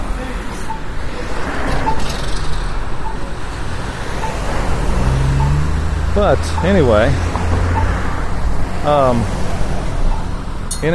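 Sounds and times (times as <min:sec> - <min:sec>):
continuous rumble of passing cars and road noise: 0:00.0 - 0:10.9
accessible audible pedestrian traffic signal beeping at a crossing: 0:00.5 - 0:08.1, 0:10.1 - 0:10.9
speech: 0:06.2 - 0:07.4, 0:08.8 - 0:09.4, 0:10.8 - 0:10.9.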